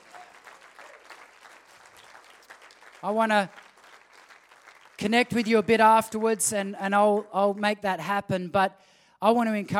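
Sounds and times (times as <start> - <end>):
crowd clapping: 0.0 - 6.8
speech: 3.0 - 3.6, 5.0 - 9.7.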